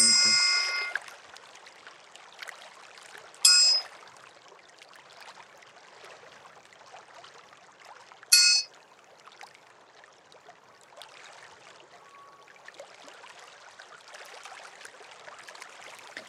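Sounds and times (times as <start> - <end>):
bright ringing tones from a struck singing pyramid: 0.0 - 1.0, 3.5 - 3.9, 8.3 - 8.7.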